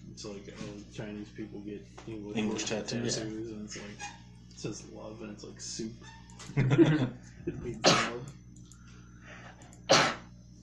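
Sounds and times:
quiet room hum: 0.0s - 10.6s
speech: 0.2s - 8.4s
laughter: 6.5s - 7.8s
sneeze: 7.8s - 8.2s, 9.9s - 10.3s.

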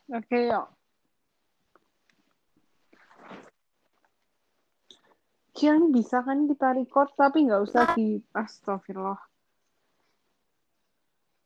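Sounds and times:
speech: 0.1s - 0.8s, 5.6s - 9.3s
choppy voice on a call breaking up from connection drop-outs: 5.6s - 9.2s.

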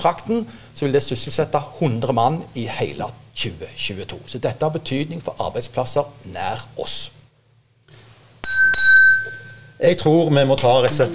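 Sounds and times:
speech: 0.0s - 7.2s, 9.8s - 11.1s
low hum: 0.0s - 11.1s
glasses clinking in a toast: 8.4s - 9.8s.

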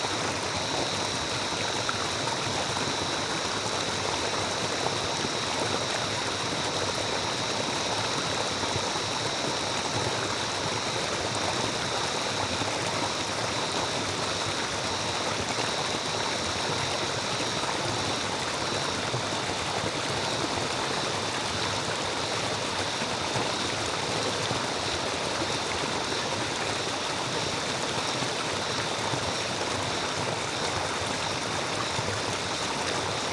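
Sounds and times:
steady dense rush of water like a stream in a summer rainforest: 0.0s - 33.3s.

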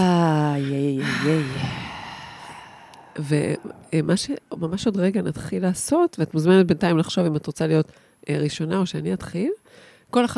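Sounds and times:
deep breath taken in and out: 0.6s - 4.0s
voiced sigh: 0.6s - 4.0s
speech: 3.2s - 10.3s.

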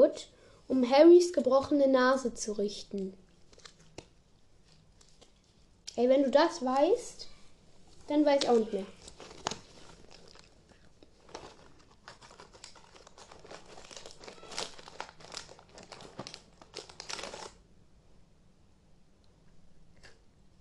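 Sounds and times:
speech: 0.0s - 3.2s, 6.0s - 7.3s, 8.1s - 9.0s
crunching and chewing chocolate-coated biscuit sticks: 8.4s - 17.6s.

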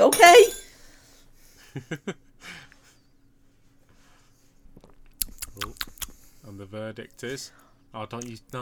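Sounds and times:
speech: 1.8s - 2.6s, 6.5s - 8.6s
wet lip smacks: 4.8s - 6.3s.

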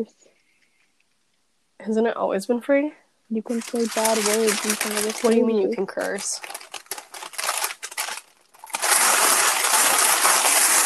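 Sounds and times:
speech: 0.0s - 0.4s, 1.8s - 6.7s
parchment paper crinkling and rustling: 3.5s - 10.8s.

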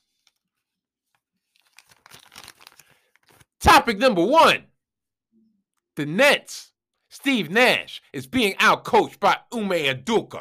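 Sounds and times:
dry paper crumpling and crinkling: 0.0s - 3.6s
speech: 3.7s - 4.7s, 6.0s - 10.3s.

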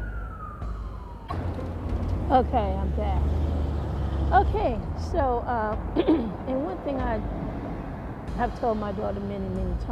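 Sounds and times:
fire truck siren wailing: 0.0s - 4.6s
steady low rumble of traffic: 0.0s - 9.9s
speech: 2.3s - 3.5s, 4.3s - 7.4s, 8.4s - 9.9s.

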